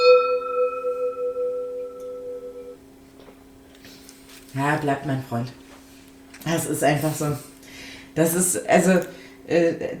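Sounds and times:
gong strike: 0.0s - 2.8s
speech: 4.6s - 5.6s, 6.4s - 7.5s, 8.2s - 9.9s.

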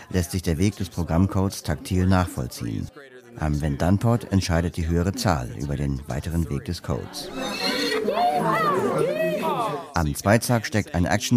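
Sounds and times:
speech: 0.1s - 11.3s
laughter: 6.3s - 10.0s
horse neighing: 7.2s - 9.9s.

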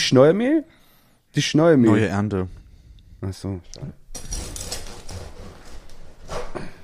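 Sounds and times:
speech: 0.1s - 2.6s, 3.2s - 4.3s
knife sawing into a crusty loaf of bread: 4.2s - 6.3s.

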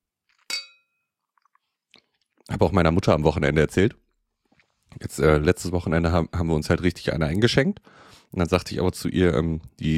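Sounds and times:
glasses clinking in a toast: 0.5s - 1.0s
speech: 2.4s - 4.0s, 5.0s - 9.9s.

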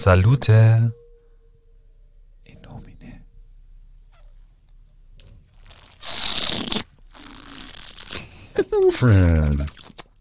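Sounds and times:
speech: 0.0s - 1.0s, 8.6s - 9.8s
slurping a drink while tasting: 5.6s - 8.3s, 9.6s - 10.1s.

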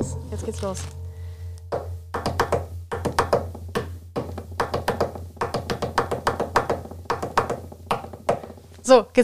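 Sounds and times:
steady low hum: 0.0s - 5.4s
speech: 0.3s - 1.0s, 8.9s - 9.2s
fingers tapping a rhythm on a hard surface: 1.7s - 8.7s.

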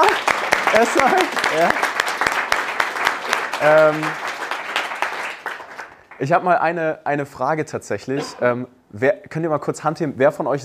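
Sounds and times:
crowd applauding: 0.0s - 6.2s
speech: 0.8s - 1.9s, 3.6s - 4.2s, 6.2s - 10.6s.

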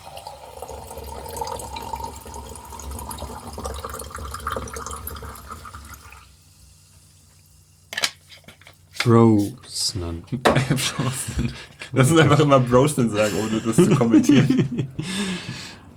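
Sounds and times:
sparkling water pouring into a glass: 0.0s - 6.3s
speech: 9.0s - 15.2s
laughter: 10.3s - 15.8s.

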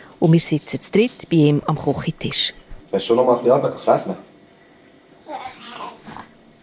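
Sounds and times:
speech: 0.2s - 4.3s
baby girl grunting and straining at a kitchen table: 5.2s - 6.3s.

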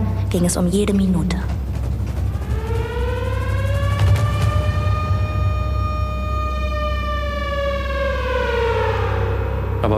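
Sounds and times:
low rumble: 0.0s - 9.9s
speech: 0.3s - 1.6s
air raid siren wailing: 1.5s - 9.9s.

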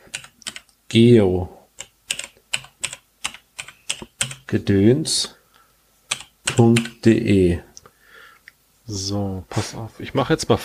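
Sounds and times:
quick keystrokes on a computer keyboard typing a startup message: 0.0s - 0.8s, 1.8s - 4.5s, 6.1s - 7.0s
speech: 0.9s - 1.6s, 4.5s - 5.4s, 6.6s - 7.7s, 8.9s - 10.6s.

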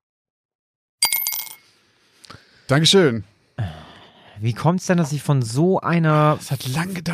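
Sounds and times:
one-euro coin dropping into a glass: 1.0s - 1.7s
speech: 2.7s - 3.8s, 4.4s - 7.1s.

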